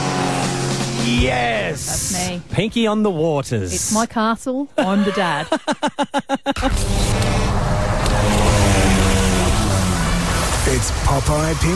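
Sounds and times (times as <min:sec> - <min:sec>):
two-stroke boat engine at full throttle: 0:00.0 - 0:02.5, 0:06.6 - 0:11.7
speech: 0:01.0 - 0:07.5, 0:10.7 - 0:11.7
laughter: 0:04.8 - 0:06.8.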